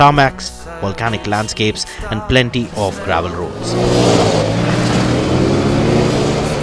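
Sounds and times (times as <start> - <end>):
speech: 0.0 - 4.6
motorcycle engine revving: 2.6 - 6.6.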